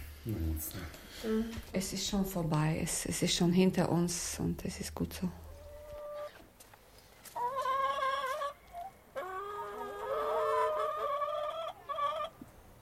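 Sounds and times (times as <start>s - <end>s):
speech: 0.2s - 5.4s
chickens clucking and squawking in a garden: 5.5s - 6.5s, 7.2s - 12.8s.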